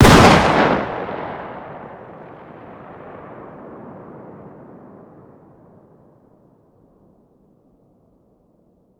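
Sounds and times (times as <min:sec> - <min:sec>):
distant 12-gauge shotgun firing outdoors: 0:00.0 - 0:04.6.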